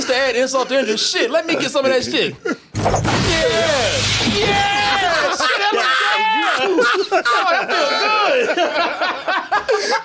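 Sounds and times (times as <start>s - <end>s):
speech: 0.1s - 4.7s, 6.6s - 10.0s
glass shattering: 2.8s - 5.2s
excited people shouting and laughing: 3.3s - 10.0s.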